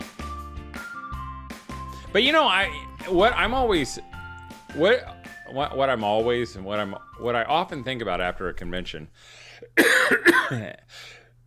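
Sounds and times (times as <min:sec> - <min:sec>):
speech: 0:02.1 - 0:04.1, 0:04.7 - 0:11.2
person coughing from a cold: 0:09.8 - 0:10.8.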